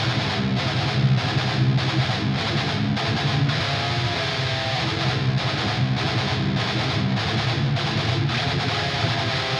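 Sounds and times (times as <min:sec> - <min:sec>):
drums: 0:00.0 - 0:09.5
evil guitar in F: 0:00.0 - 0:09.5.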